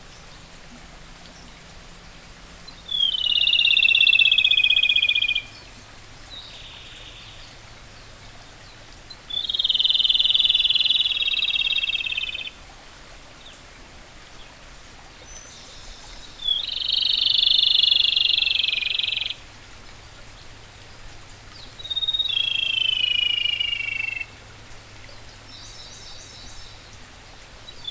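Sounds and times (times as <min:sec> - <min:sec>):
rufous-tailed robin Larvivora sibilans calling: 0:02.7 - 0:05.7, 0:09.3 - 0:12.5, 0:16.4 - 0:19.4, 0:21.8 - 0:24.3.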